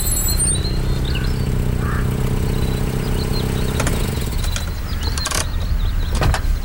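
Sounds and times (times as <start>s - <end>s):
car engine humming at low speed: 0.0s - 6.6s
mechanical whirs and clicks: 3.8s - 6.5s.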